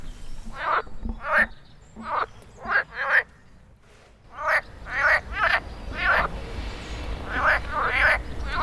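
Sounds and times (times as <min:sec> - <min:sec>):
faint outdoor background: 0:00.0 - 0:08.6
chorus of frogs croaking in spring mating season: 0:00.5 - 0:03.3, 0:04.3 - 0:06.3, 0:07.2 - 0:08.6.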